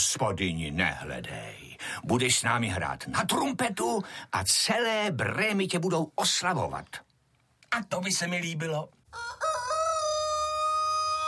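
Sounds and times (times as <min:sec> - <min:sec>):
speech: 0:00.0 - 0:07.1, 0:07.7 - 0:09.3
rooster crowing: 0:09.1 - 0:11.2.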